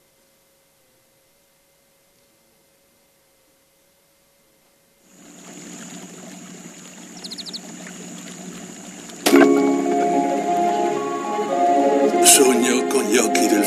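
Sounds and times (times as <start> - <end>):
river water flowing in a valley between Jesi and Fabriano: 5.1 - 13.6
louder layer with sustained tones: 9.3 - 13.6.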